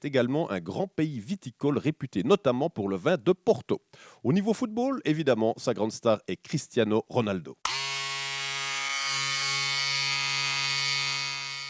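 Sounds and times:
speech: 0.0 - 7.8
electric razor buzzing: 7.7 - 11.6.

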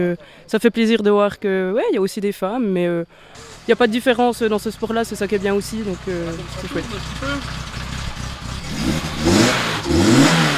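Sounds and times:
speech: 0.0 - 7.7
rebuilt 1986 slalom race car engine revving: 3.4 - 10.5.

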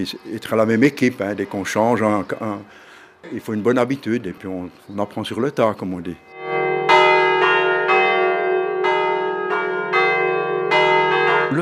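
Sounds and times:
speech: 0.0 - 6.4
church carillon bells being rung: 6.2 - 11.6.

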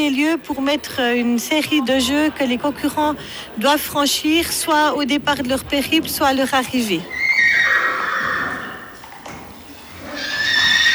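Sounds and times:
speech: 0.0 - 7.7
horse whinnying loudly: 7.1 - 9.0, 10.0 - 10.9.

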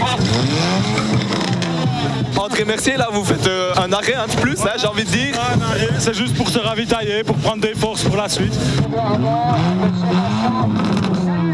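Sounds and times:
car engine with straight-pipe open exhaust revving: 0.0 - 11.5
speech: 2.6 - 11.5.

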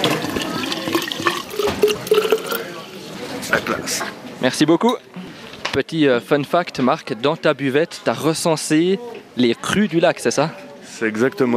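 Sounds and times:
sparkling water pouring into a water bottle: 0.0 - 2.8
speech: 3.5 - 5.1, 5.8 - 11.5.

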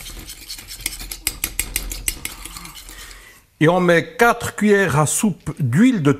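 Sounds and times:
mustard, salt and white wine vinegar dressing being stirred: 0.0 - 3.5
speech: 3.6 - 6.1.

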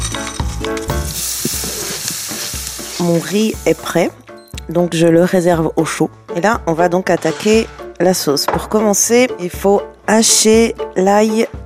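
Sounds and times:
flaked almonds sizzling in a hot dry pan with no fat: 1.1 - 4.2
speech: 3.0 - 11.6.

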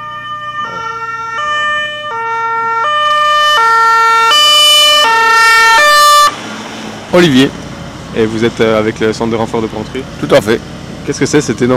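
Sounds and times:
ambulance siren alternating between two tones: 0.0 - 6.7
faint road rumble: 0.0 - 11.7
speech: 7.1 - 7.6, 8.2 - 11.7.

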